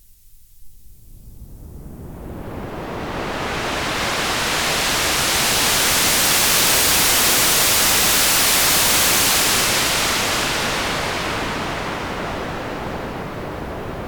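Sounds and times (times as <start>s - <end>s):
stereo low-pass filtered noise without resonance: 1.0s - 13.9s.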